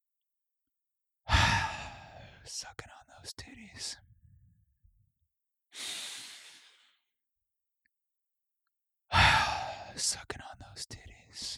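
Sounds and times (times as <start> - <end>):
person breathing in during a guided meditation: 1.3 - 2.5, 5.8 - 7.0
speech: 2.6 - 4.1.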